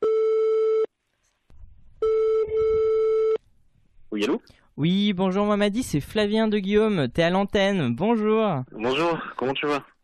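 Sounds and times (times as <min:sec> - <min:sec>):
telephone ringback tone while placing a call: 0:02.0 - 0:03.4
speech: 0:04.2 - 0:09.9.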